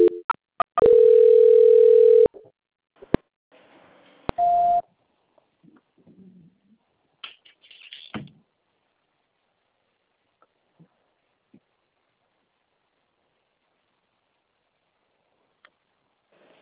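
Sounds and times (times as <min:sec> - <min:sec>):
telephone dial tone during call transfer: 0:00.8 - 0:02.3.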